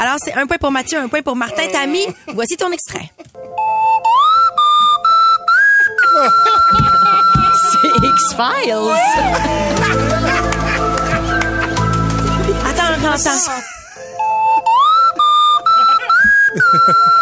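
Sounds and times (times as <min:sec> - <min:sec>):
speech: 0:00.0 - 0:03.3, 0:08.0 - 0:10.6, 0:13.0 - 0:13.8, 0:16.7 - 0:17.2
laughter: 0:01.4 - 0:03.4, 0:05.7 - 0:14.2, 0:15.1 - 0:17.2
busy recorded music: 0:02.8 - 0:17.2
TV theme tune played on slide whistle: 0:03.5 - 0:09.5, 0:14.1 - 0:17.2.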